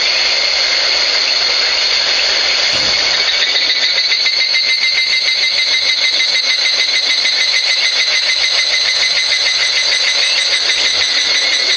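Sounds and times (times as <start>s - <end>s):
Walker's cicada song shrill buzz: 0.0s - 11.7s
low thump: 2.7s - 3.3s.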